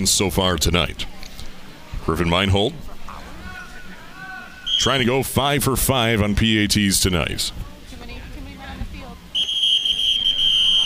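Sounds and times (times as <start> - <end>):
speech: 0.0 - 1.3, 2.1 - 2.9, 4.8 - 7.7
referee's whistle blast at a football game: 4.6 - 5.1, 9.4 - 10.8.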